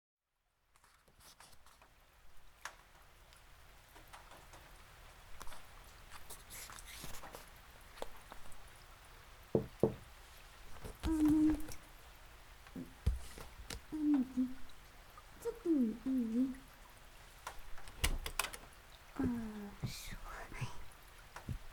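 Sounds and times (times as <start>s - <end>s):
rain: 0.5s - 21.7s.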